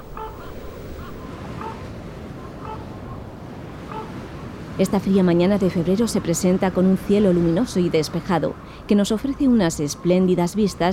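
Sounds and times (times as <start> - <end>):
wind whipping across bare mountain crags on a cold February morning: 0.0 - 5.4
speech: 4.8 - 10.9.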